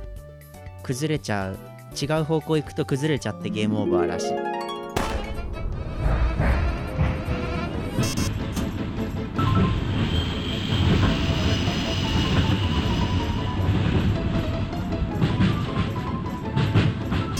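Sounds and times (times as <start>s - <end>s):
speech: 0.8s - 4.5s
mine cart rolling on rails in a video game: 5.4s - 17.3s.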